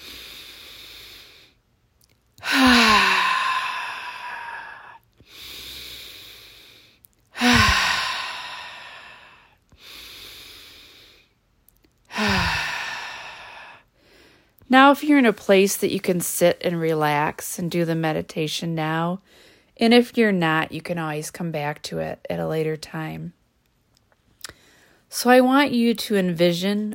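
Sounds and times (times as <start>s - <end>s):
deep breaths in during a guided relaxation exercise: 0.0s - 1.6s, 2.4s - 11.4s, 12.1s - 14.6s, 24.5s - 25.1s
loud sighing exhales during a guided relaxation exercise: 2.4s - 5.0s, 7.4s - 9.5s, 12.1s - 13.8s
speech: 14.7s - 23.4s, 25.1s - 26.9s.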